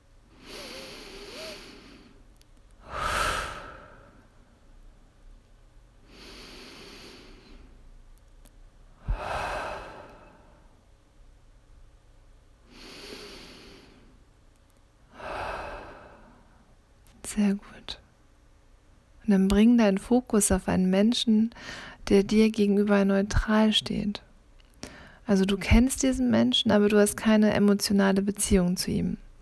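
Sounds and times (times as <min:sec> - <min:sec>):
deep breathing in and out during a guided breathing exercise: 0:00.4 - 0:02.2, 0:02.8 - 0:04.5, 0:06.1 - 0:07.8, 0:09.0 - 0:10.8, 0:15.1 - 0:16.7, 0:21.6 - 0:22.0, 0:24.8 - 0:25.2
speech: 0:17.3 - 0:18.0, 0:19.3 - 0:24.3, 0:25.3 - 0:29.2.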